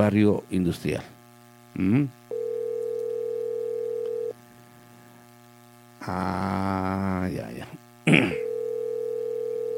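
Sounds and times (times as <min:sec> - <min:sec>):
speech: 0:00.0 - 0:01.2, 0:01.8 - 0:02.2, 0:06.0 - 0:08.4
low constant hum: 0:00.0 - 0:09.7
ringback tone of an unanswered outgoing telephone call: 0:02.3 - 0:04.4, 0:08.4 - 0:09.7.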